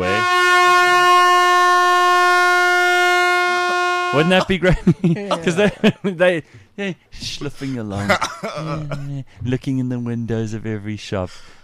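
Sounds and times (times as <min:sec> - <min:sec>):
air horn blast: 0:00.0 - 0:04.6
speech: 0:04.1 - 0:11.6
laughter: 0:04.2 - 0:06.4, 0:07.3 - 0:09.2.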